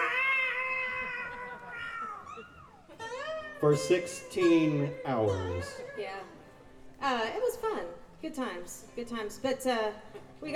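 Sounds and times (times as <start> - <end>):
person imitating a cat yowling in a box in a moving truck: 0.0 - 3.9
speech: 3.6 - 6.4, 7.0 - 10.5.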